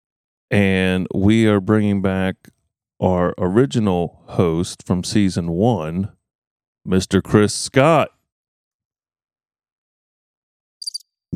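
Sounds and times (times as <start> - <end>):
speech: 0.5 - 6.2, 6.8 - 8.2
cricket chirp sound effect: 10.8 - 11.0.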